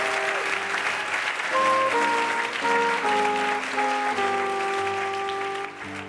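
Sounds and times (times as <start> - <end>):
crowd applause: 0.0 - 6.0
sustained musical notes: 1.6 - 6.0.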